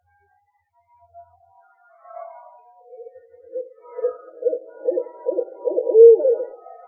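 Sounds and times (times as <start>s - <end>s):
owl hooting: 3.5s - 6.8s.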